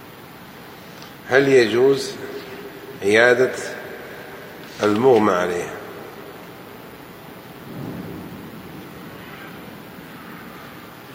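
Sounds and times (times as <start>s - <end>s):
steady rain downpour: 0.0s - 11.1s
speech: 1.3s - 2.2s, 3.0s - 3.8s, 4.8s - 5.8s
low roll of thunder: 5.9s - 11.1s.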